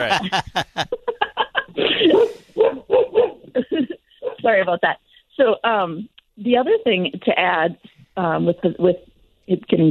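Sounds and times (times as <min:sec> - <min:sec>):
speech: 0:00.0 - 0:01.0, 0:05.7 - 0:09.9
laughter: 0:00.0 - 0:02.5, 0:03.6 - 0:04.1
hound dog barking and howling: 0:02.1 - 0:03.5.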